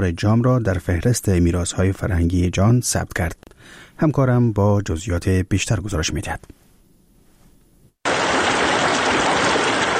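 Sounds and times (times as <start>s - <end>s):
speech: 0.0s - 6.6s
river water rushing at the Harirud and Jam confluence in Afghanistan: 8.1s - 9.9s.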